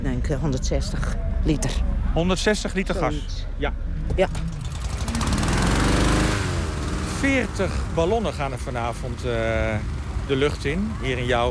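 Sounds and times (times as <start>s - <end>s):
speech: 0.3s - 4.6s, 7.2s - 11.4s
large fan blowing cold air into hot air balloons: 4.3s - 11.4s.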